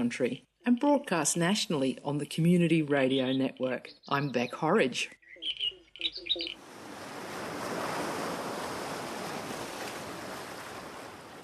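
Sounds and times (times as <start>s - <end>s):
speech: 0.0s - 5.6s
wind on a headland: 0.0s - 11.4s
birds chirping: 1.4s - 7.4s
ocean surf on a windy headland: 6.4s - 11.4s.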